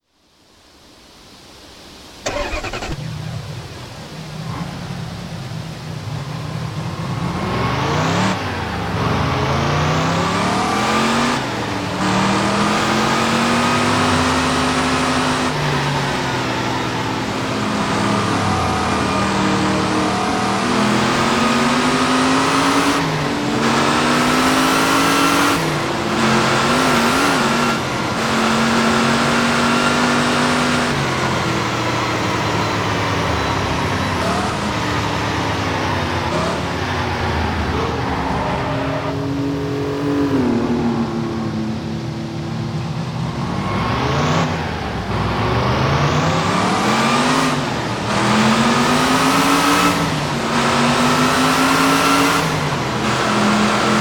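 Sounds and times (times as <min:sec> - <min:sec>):
Noble M400 car: 0:00.0 - 0:53.9.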